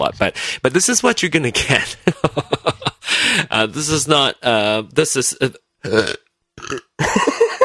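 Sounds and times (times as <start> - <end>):
speech: 0.0 - 2.6, 3.4 - 7.3
laughter: 1.6 - 3.1, 7.0 - 7.6
loud burp: 5.8 - 7.0.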